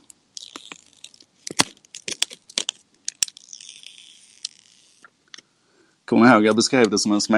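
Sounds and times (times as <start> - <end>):
plastic film being peeled off new packaging: 0.4 - 5.1
speech: 6.1 - 7.3.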